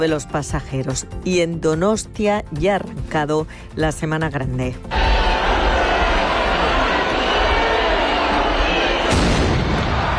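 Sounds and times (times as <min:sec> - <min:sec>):
speech: 0:00.0 - 0:05.1
large outdoor crowd murmuring and cheering: 0:04.9 - 0:10.1
ceremonial cannon shot booming: 0:09.1 - 0:10.1.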